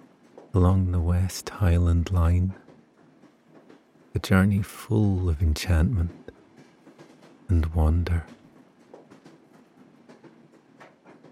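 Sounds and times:
speech: 0.5s - 2.6s, 4.2s - 6.2s, 7.5s - 8.4s
steam train wheels clacking over the rails on the West Highland Line: 1.8s - 11.3s.

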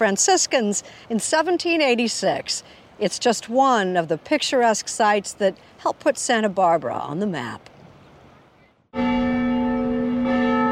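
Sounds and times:
speech: 0.0s - 7.7s
large church mission bell ringing: 9.0s - 10.6s.

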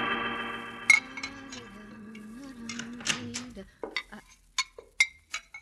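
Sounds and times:
sustained tonal hum: 0.2s - 3.6s
dishes and cutlery clinking while washed in a cafe kitchen: 0.9s - 1.7s, 2.7s - 5.6s.

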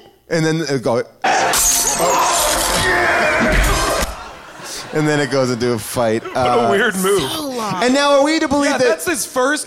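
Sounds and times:
speech: 0.3s - 3.9s, 4.9s - 9.6s
glass smashed on a hand: 1.5s - 2.9s
laughter: 3.0s - 9.6s.

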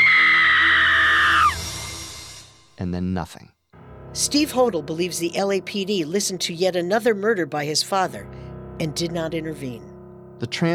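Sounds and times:
woman screaming: 0.0s - 1.6s
speech: 2.8s - 3.6s, 4.2s - 10.7s.

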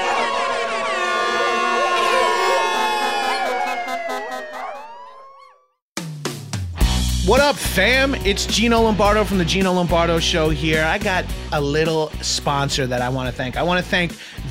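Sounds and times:
loud sustained air horn: 0.0s - 4.2s
speech: 7.3s - 14.4s.

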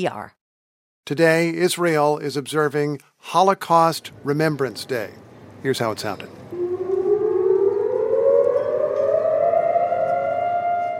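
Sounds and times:
speech: 0.0s - 0.4s, 1.0s - 6.4s
civil defense siren wailing across Israel on Holocaust Remembrance Day: 6.5s - 10.9s.

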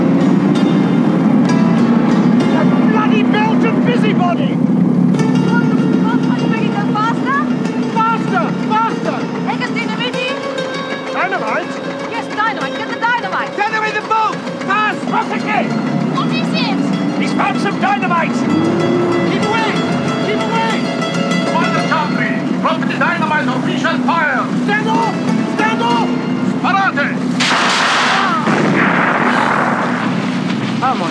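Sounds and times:
indistinct voices: 0.0s - 29.9s
busy soundtrack music: 0.0s - 31.0s
motorboat engines roaring in a chase: 0.0s - 31.0s
rushing splashy burst of noise: 27.3s - 31.0s.

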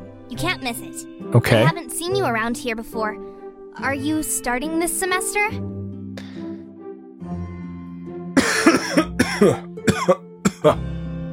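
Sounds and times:
speech: 0.3s - 5.8s, 9.4s - 11.0s
person's loud coughing fit with harsh hacking coughs: 8.4s - 10.8s
person clearing throat: 8.4s - 11.3s.

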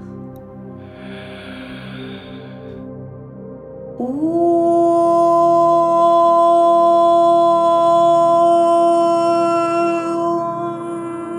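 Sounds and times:
steady low droning tone: 0.0s - 11.3s
long deep inhalation through the nose: 0.7s - 2.9s
speech: 4.0s - 4.4s.

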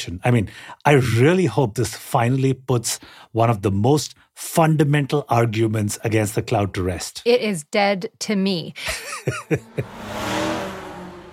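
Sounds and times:
speech: 0.0s - 10.4s
laughter: 8.8s - 9.9s
race car engine revving: 9.6s - 11.3s.

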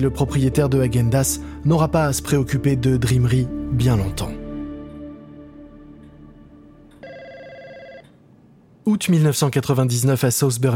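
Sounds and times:
speech: 0.0s - 4.4s, 8.8s - 10.7s
telephone ringing in an office in South Burlington Vermont: 7.0s - 8.2s.

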